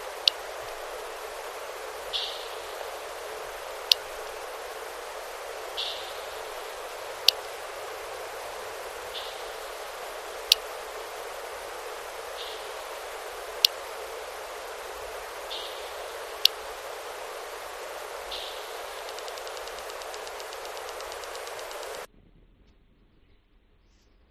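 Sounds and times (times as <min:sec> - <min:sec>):
soft faint chirps: 0:00.0 - 0:22.1
steady hiss: 0:00.0 - 0:22.1
sharp echolocation clicks of an animal closing in on prey: 0:19.0 - 0:22.1.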